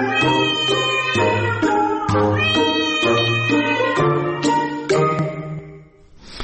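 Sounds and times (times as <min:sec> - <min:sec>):
domestic cat meowing loudly: 0:00.0 - 0:04.9.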